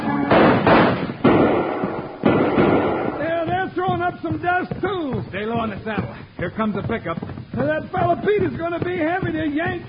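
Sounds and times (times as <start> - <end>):
gunshots with booming echo: 0.1 - 3.9
speech: 4.3 - 9.8.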